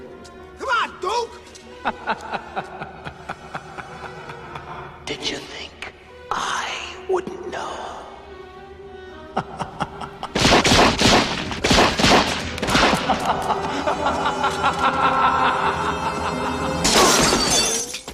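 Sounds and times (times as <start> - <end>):
speech: 1.2 - 2.7
laughter: 1.7 - 5.0, 9.3 - 10.4, 12.7 - 16.8
Tommy gun fire from gangsters in a radio drama: 10.4 - 13.0
shattering crashes: 16.8 - 18.1.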